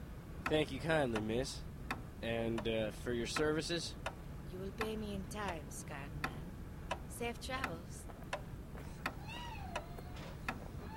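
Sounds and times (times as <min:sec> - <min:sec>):
sharp ticking clicks: 0:00.4 - 0:10.9
speech: 0:00.5 - 0:06.3, 0:07.2 - 0:08.1
cat meowing: 0:09.2 - 0:10.9.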